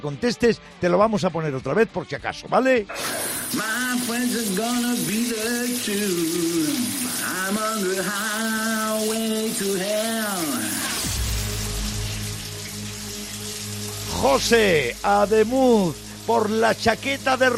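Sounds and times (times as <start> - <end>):
speech: 0.0 - 10.7, 14.2 - 17.5
person singing a melody: 2.9 - 11.0
shower water running in a steady hiss: 2.9 - 17.5.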